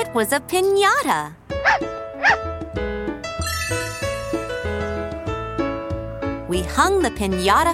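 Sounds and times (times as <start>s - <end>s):
light bouncy instrumental music: 0.0s - 7.7s
speech: 0.1s - 1.9s, 6.5s - 7.7s
dog barking: 1.6s - 2.4s.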